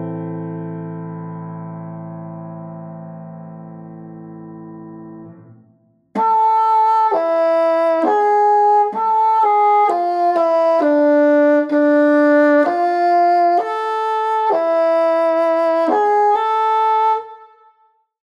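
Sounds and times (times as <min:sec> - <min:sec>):
bassoon playing in A minor: 0:06.2 - 0:17.8.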